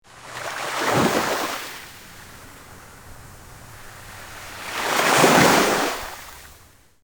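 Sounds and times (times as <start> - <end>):
ocean waves crashing: 0.0 - 7.0.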